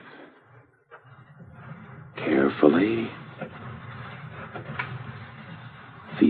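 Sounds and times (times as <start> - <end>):
house door quietly opened and closed: 0.9 - 6.2
speech: 2.5 - 3.2.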